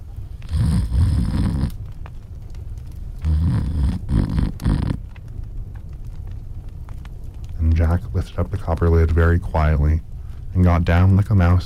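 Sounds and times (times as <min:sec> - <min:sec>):
giant snoring loudly: 0:00.5 - 0:01.8, 0:03.2 - 0:05.0
speech: 0:07.9 - 0:11.6.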